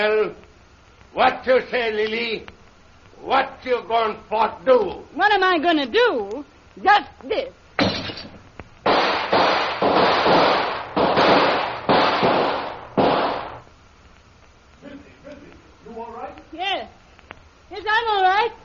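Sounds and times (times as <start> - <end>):
speech: 0.0 - 0.5, 1.2 - 2.6, 3.2 - 7.9
gunshots fired through a window: 7.8 - 13.6.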